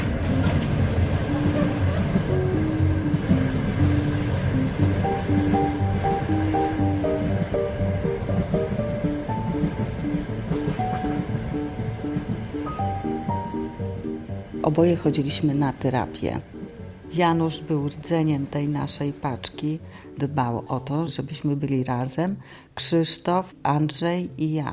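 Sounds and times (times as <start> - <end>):
moving train rumbling heard from rear platform of last carriage: 0.0 - 19.4
speech: 14.8 - 24.7.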